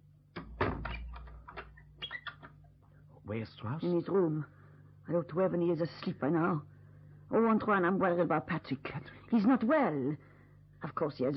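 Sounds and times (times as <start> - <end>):
low hum: 0.0 - 11.3
door swinging shut with a solid thump: 0.4 - 1.7
faint creaks: 0.4 - 2.7
speech: 3.3 - 6.7, 7.3 - 11.3.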